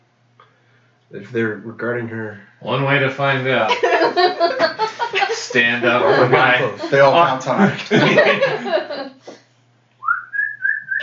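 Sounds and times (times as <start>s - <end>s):
speech: 1.1s - 8.8s
laughter: 3.7s - 9.4s
brief burst of speech-like sound: 3.8s - 7.8s
person whistling a single sustained note: 10.0s - 11.0s.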